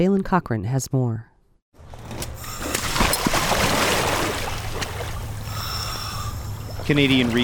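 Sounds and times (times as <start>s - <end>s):
speech: 0.0s - 1.3s, 6.9s - 7.4s
person wading out of cold river water: 2.4s - 7.4s.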